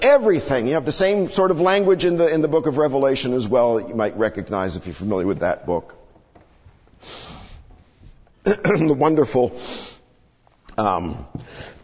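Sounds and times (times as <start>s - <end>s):
speech: 0.1s - 6.0s, 8.4s - 9.9s, 10.8s - 11.8s
person coughing: 8.4s - 9.0s.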